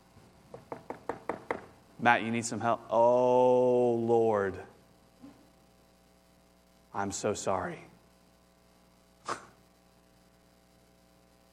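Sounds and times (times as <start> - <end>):
knocking on a door: 0.5 - 1.7
speech: 2.0 - 4.7, 7.0 - 7.9.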